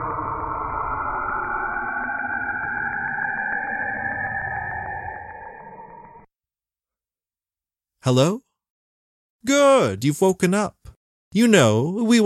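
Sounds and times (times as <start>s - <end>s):
loud dense electronic drone with rising whine: 0.0s - 6.3s
speech: 8.0s - 8.4s, 9.4s - 12.2s.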